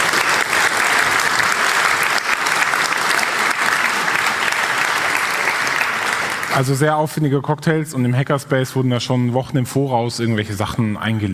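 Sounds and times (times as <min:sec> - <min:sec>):
crowd applauding: 0:00.0 - 0:06.8
speech: 0:06.6 - 0:11.3.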